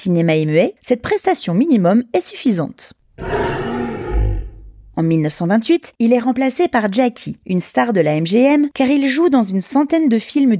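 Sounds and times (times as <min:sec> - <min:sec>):
speech: 0:00.0 - 0:03.6, 0:05.0 - 0:10.5
lion roaring for a film studio logo: 0:03.2 - 0:05.0.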